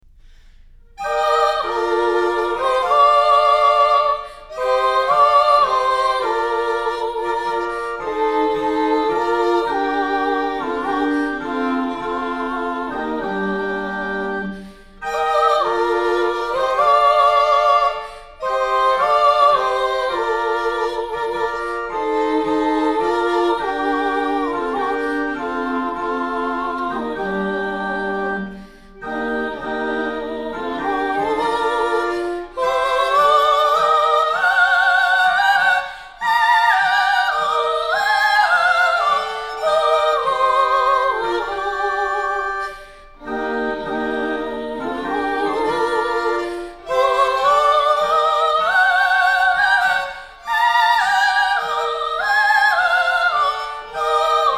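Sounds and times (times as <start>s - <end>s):
high voices singing sarabande in faux bourdon: 0.0s - 54.5s.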